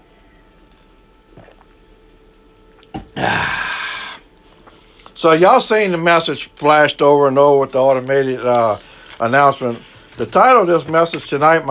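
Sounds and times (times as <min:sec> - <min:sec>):
person drinking and swallowing water: 0:01.3 - 0:01.8, 0:02.8 - 0:04.2
speech: 0:03.0 - 0:03.5, 0:05.2 - 0:11.6.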